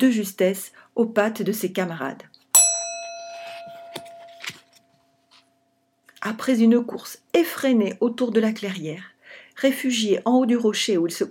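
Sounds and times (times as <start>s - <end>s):
speech: 0.0s - 2.3s, 6.2s - 11.2s
bell ringing signalling a race start: 2.6s - 4.7s.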